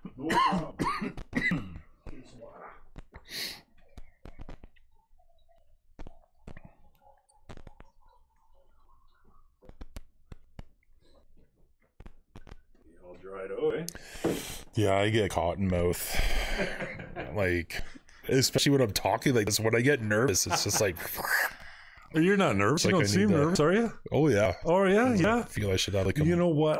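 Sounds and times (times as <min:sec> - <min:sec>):
coughing and throat clearing: 0:00.0 - 0:02.0
speech: 0:14.8 - 0:26.7.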